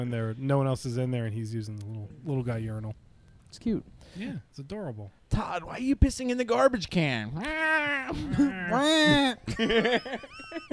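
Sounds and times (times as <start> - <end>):
speech: 0.0 - 10.7
person imitating a cat's meow: 7.4 - 9.3
laughter: 8.1 - 10.7.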